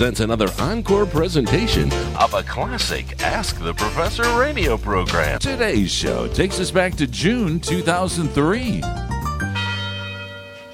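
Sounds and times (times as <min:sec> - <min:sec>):
speech: 0:00.0 - 0:09.0
university tower chimes ringing in Detroit: 0:09.3 - 0:10.7.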